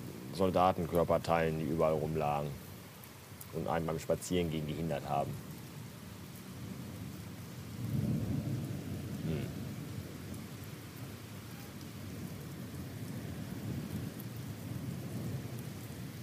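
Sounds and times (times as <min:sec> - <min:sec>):
steady rain during a thunderstorm: 0:00.0 - 0:16.2
speech: 0:00.4 - 0:02.6, 0:03.5 - 0:05.5
deep rumble of thunder: 0:06.6 - 0:11.2, 0:12.0 - 0:16.2.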